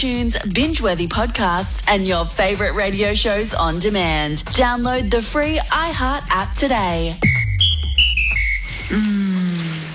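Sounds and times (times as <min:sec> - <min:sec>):
speech: 0:00.0 - 0:07.4, 0:08.9 - 0:09.2
high whistling tones: 0:07.2 - 0:09.8
shower spraying water: 0:08.4 - 0:09.9.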